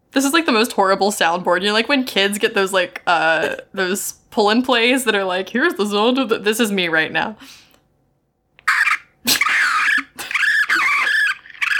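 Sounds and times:
speech: 0.2 - 7.6
raccoons fighting with screeching squeals and snarls: 8.7 - 11.7.

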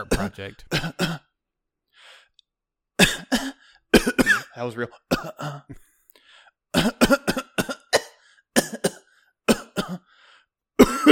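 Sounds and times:
speech: 0.0 - 1.3, 4.0 - 5.9, 6.7 - 7.4
person coughing: 0.0 - 1.4, 3.0 - 5.8, 6.7 - 10.1, 10.8 - 11.1.

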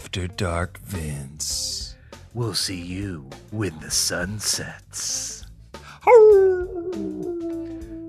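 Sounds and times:
speech: 0.1 - 5.4, 6.0 - 7.3
wolf howling: 6.0 - 8.0.

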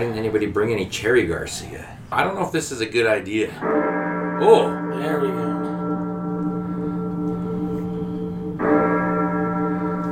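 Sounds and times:
speech: 0.0 - 5.7
church bell tolling: 3.5 - 10.1.

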